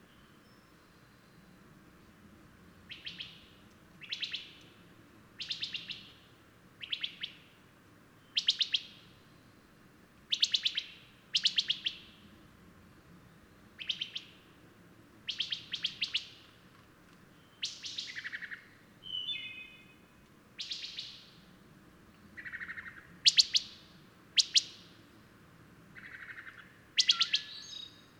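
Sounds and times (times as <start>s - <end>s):
bird song: 0.0s - 2.2s, 2.9s - 4.8s, 5.4s - 7.6s, 8.2s - 12.4s, 13.2s - 14.6s, 15.3s - 16.6s, 17.3s - 21.6s, 22.3s - 25.1s, 26.0s - 28.1s.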